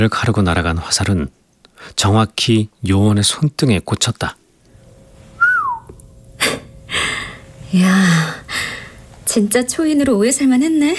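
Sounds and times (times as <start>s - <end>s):
speech: 0.0s - 4.4s, 7.7s - 10.9s
person whistling: 5.4s - 5.9s.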